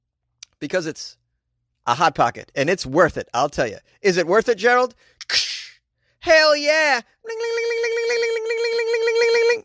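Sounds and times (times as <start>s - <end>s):
speech: 0.6s - 1.2s, 1.8s - 5.5s, 6.2s - 9.0s
person vocally imitating a bank alarm: 7.3s - 9.6s.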